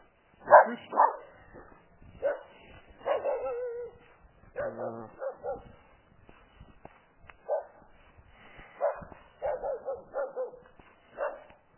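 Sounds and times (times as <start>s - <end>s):
puppy barking: 0.5s - 1.3s, 2.2s - 3.9s, 4.6s - 5.7s, 7.5s - 7.8s, 8.8s - 10.6s, 11.2s - 11.5s.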